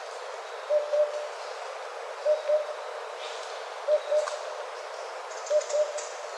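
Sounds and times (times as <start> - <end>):
faint background hiss: 0.0 - 6.3
Oriental cuckoo giving low hollow double hoots: 0.7 - 1.2, 2.2 - 2.8, 3.9 - 4.4, 5.5 - 6.0.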